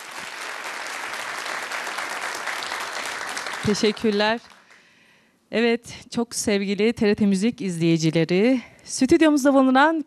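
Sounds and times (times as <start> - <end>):
studio audience applauding an orchestra: 0.0 - 4.9
speech: 3.6 - 4.5, 5.5 - 10.0.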